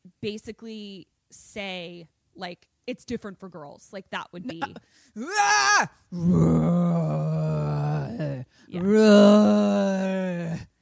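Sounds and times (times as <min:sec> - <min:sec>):
speech: 0:00.2 - 0:07.5, 0:08.7 - 0:10.6
voice imitating a fire-breathing dragon roar: 0:05.4 - 0:10.7.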